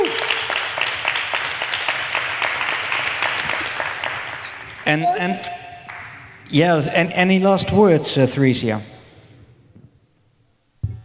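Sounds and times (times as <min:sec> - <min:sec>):
audience applause: 0:00.0 - 0:06.3
speech: 0:04.9 - 0:05.6, 0:06.5 - 0:08.9.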